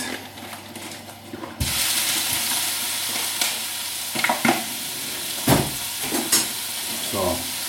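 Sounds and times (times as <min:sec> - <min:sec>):
food sizzling in a hot frying pan: 0:01.6 - 0:07.6.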